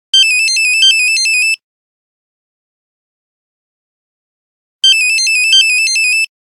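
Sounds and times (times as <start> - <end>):
Nokia 3210 mobile phone buzzer: 0.2 - 1.6, 4.8 - 6.3.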